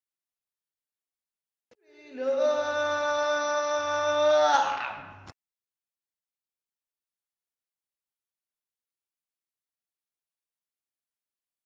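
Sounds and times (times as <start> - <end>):
choir voices: 1.7 - 5.3.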